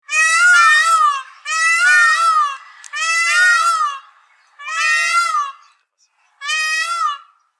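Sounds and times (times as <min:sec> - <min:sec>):
peacock calling: 0:00.0 - 0:07.5.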